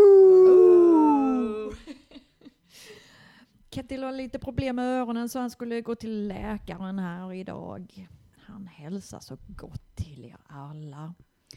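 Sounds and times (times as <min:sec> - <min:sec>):
people howling like wolves as a greeting: 0:00.0 - 0:01.8
speech: 0:03.8 - 0:11.3.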